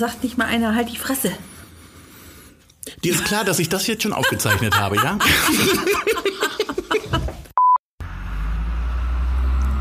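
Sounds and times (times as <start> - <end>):
speech: 0.0 - 1.6, 2.8 - 6.8
laughter: 3.0 - 7.5
car passing on the street outside: 8.0 - 9.7.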